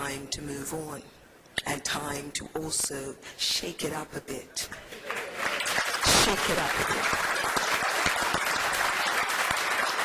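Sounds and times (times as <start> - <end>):
speech: 0.3 - 5.1, 6.3 - 7.5
audience applause: 5.0 - 10.0.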